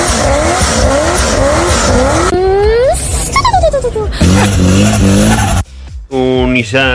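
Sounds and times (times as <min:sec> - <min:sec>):
Chevrolet Corvette C6 engine revving: 0:00.0 - 0:03.4, 0:04.1 - 0:05.7
tire noise: 0:00.0 - 0:05.7.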